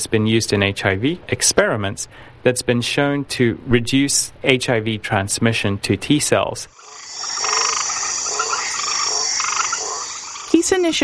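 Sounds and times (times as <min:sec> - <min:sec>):
speech: 0:00.0 - 0:06.9, 0:10.6 - 0:11.0
constant high insect-like drone: 0:06.7 - 0:11.0
dense chorus of frogs croaking: 0:06.7 - 0:11.0.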